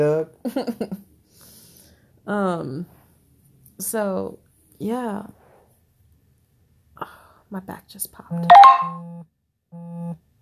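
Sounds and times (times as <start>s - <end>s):
speech: 0.0s - 1.1s, 2.3s - 3.0s, 3.8s - 5.4s, 7.0s - 10.4s
phone beeping: 8.4s - 9.2s.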